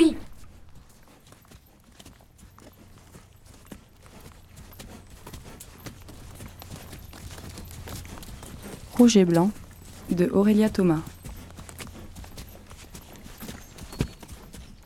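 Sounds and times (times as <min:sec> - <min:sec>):
horse hooves clip-clopping: 0:00.0 - 0:14.8
speech: 0:09.0 - 0:11.1.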